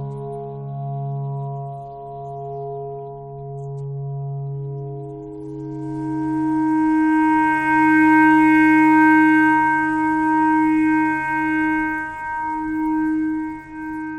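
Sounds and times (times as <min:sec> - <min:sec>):
simple clarinet playing: 0:05.8 - 0:14.1.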